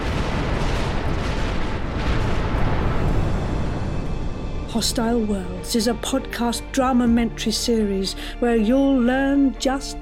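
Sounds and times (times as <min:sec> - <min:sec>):
cosmic explosion effect of an exploding star: 0:00.0 - 0:05.3
speech: 0:04.8 - 0:10.0.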